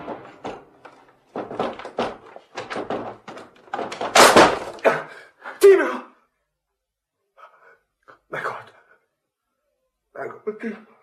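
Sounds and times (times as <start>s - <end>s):
locked door being forced open with heavy thuds and bangs: 0.0s - 4.9s
speech: 10.5s - 10.9s.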